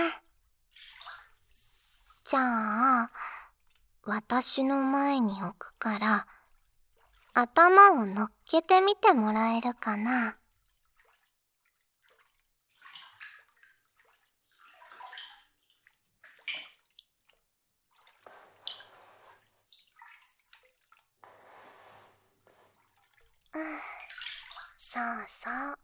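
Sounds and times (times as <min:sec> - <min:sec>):
hot bath water splashing and sloshing: 0:00.7 - 0:02.3, 0:05.7 - 0:08.5, 0:10.4 - 0:25.0
speech: 0:02.3 - 0:03.4, 0:04.0 - 0:06.4, 0:07.4 - 0:10.4, 0:23.6 - 0:23.9, 0:24.9 - 0:25.8.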